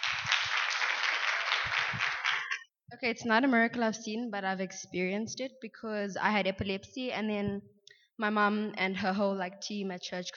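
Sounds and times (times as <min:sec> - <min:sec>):
audience clapping for a person coming up: 0:00.0 - 0:02.6
speech: 0:03.0 - 0:10.3.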